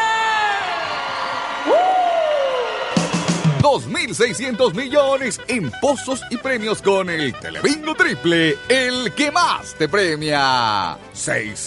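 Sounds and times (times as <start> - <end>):
lively crowd cheering and whooping: 0.0 - 3.6
speech: 3.7 - 11.6.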